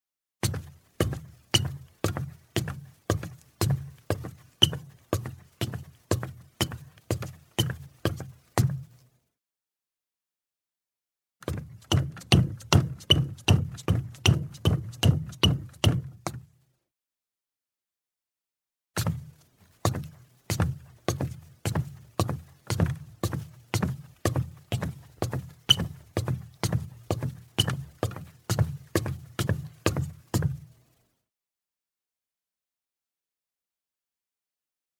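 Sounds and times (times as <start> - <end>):
man's footsteps climbing wooden stairs: 0.4 - 8.9, 11.4 - 16.5, 19.0 - 30.7.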